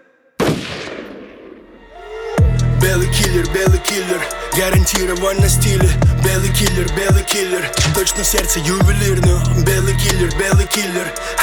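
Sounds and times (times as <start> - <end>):
single loud gunshot: 0.4 - 1.8
speech: 2.8 - 11.4.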